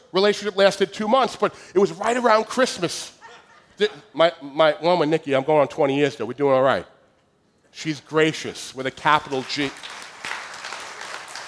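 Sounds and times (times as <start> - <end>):
speech: 0.1 - 3.2, 3.8 - 6.9, 7.7 - 10.0
laughter: 2.0 - 4.1
crowd applauding: 9.2 - 11.4.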